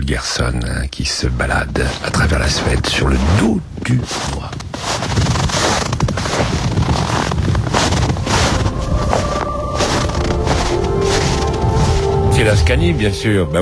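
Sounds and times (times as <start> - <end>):
speech: 0.0 - 5.2, 12.4 - 13.6
wind buffeting the microphone: 3.4 - 13.6
tractor engine droning while ploughing a field: 7.7 - 13.6.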